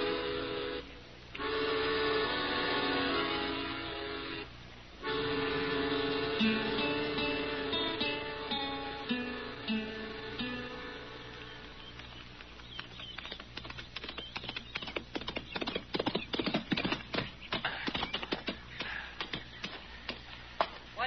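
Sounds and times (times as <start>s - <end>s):
musical passage: 0.0s - 11.8s
horse hooves clip-clopping in a brisk rhythm: 11.0s - 20.8s.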